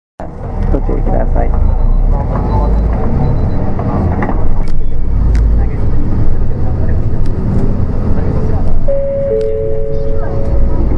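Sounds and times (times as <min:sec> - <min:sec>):
speech: 0:00.2 - 0:04.1
low engine rumble inside a moving city bus in Japan: 0:00.2 - 0:10.9
road noise inside a moving city bus: 0:00.2 - 0:10.9
recorded Japanese announcement voice giving route and destination: 0:00.7 - 0:03.6, 0:08.1 - 0:10.9
chime tone: 0:08.9 - 0:10.9.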